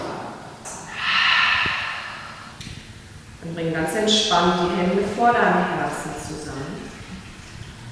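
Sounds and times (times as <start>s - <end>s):
deep breath drawn in through the nose: 0.9s - 2.9s
speech: 3.6s - 6.7s.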